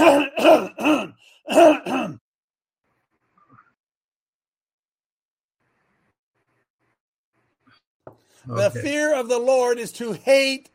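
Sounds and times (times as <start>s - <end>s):
man clearing his throat: 0.0s - 2.2s
speech: 8.5s - 10.7s.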